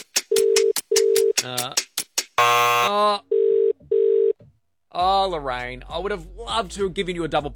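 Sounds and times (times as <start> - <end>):
speech: 1.4 - 1.9, 5.0 - 7.5
outgoing phone call ringback tone ringing unanswered: 2.4 - 4.4.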